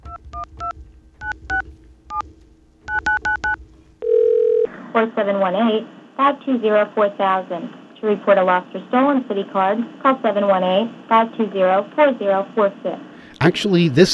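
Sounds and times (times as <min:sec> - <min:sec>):
touch-tone keypad beeps: 0:02.9 - 0:03.6
steady phone tone: 0:02.9 - 0:04.7
speech: 0:05.0 - 0:14.1
person speaking over the phone line: 0:13.4 - 0:14.1.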